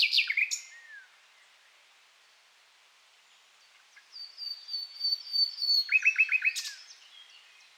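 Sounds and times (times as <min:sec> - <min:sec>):
Luscinia megarhynchos song phrase: 0:00.0 - 0:01.2, 0:03.6 - 0:07.7.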